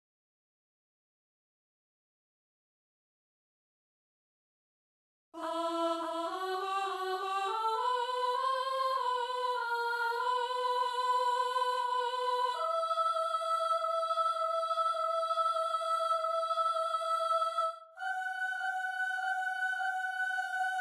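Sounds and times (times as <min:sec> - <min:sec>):
soprano singing: 0:05.4 - 0:20.7.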